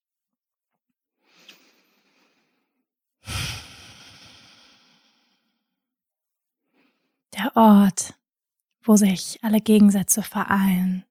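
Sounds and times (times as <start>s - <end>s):
deep breathing during a guided heart-centred meditation: 1.2s - 5.8s
speech: 7.4s - 8.2s, 8.8s - 11.1s.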